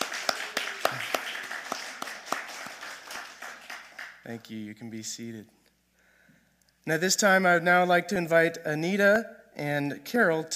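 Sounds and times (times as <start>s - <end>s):
church audience applauding: 0.0s - 4.4s
speech: 4.2s - 5.6s, 6.9s - 10.5s.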